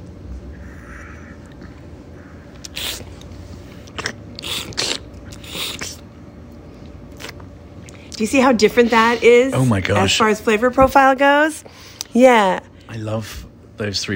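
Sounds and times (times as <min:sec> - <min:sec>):
low hum: 0:00.0 - 0:14.1
swallowing a tasting sample: 0:00.7 - 0:06.1, 0:06.8 - 0:08.2
sniffing a tasting sample: 0:02.6 - 0:06.0
slurping a tasting sample: 0:02.6 - 0:06.1
speech: 0:08.2 - 0:14.1.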